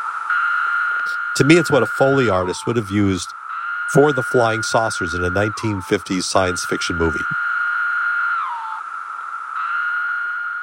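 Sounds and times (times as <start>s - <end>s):
Magicicada septendecim cicada calling: 0.0s - 10.6s
speech: 1.0s - 7.4s.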